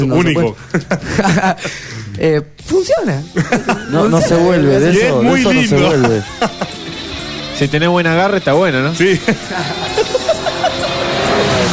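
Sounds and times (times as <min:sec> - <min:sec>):
speech: 0:00.0 - 0:06.8, 0:07.6 - 0:10.1
laughter: 0:00.5 - 0:02.0, 0:03.3 - 0:07.3, 0:09.0 - 0:11.6
road traffic roar: 0:05.1 - 0:07.6, 0:08.8 - 0:11.7
car passing a city bus: 0:09.4 - 0:11.7.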